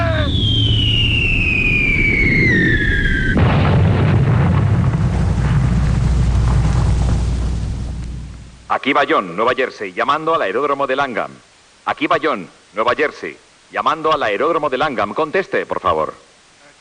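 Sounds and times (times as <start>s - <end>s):
high falling whistle of an explosion effect: 0.0s - 3.6s
loud explosion blast: 0.0s - 8.7s
speech: 8.8s - 16.8s.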